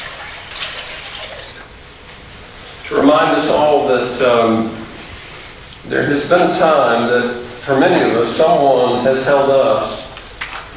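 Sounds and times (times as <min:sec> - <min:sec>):
water pouring into a church baptismal font: 0:00.0 - 0:01.8
speech: 0:02.9 - 0:04.8, 0:05.8 - 0:10.0.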